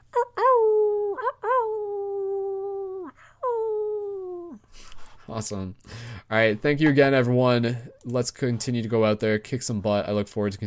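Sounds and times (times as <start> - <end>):
human voice imitating a wolf howl: 0.2 - 4.6
speech: 5.3 - 10.6.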